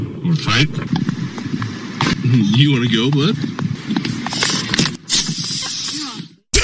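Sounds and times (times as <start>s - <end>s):
faint low rumbling: 0.0s - 5.1s
speech: 0.3s - 1.0s, 2.3s - 3.6s
air hissing out of a punctured car tire: 4.3s - 6.4s.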